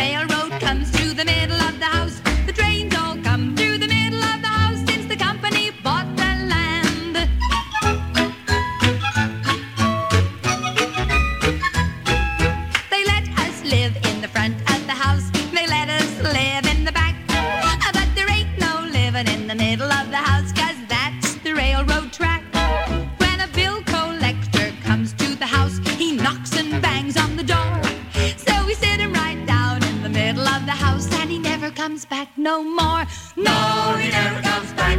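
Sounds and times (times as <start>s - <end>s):
melodic vocal line: 0.0s - 7.4s, 12.9s - 34.9s
song by a full band played from an old 78 record: 0.0s - 34.9s.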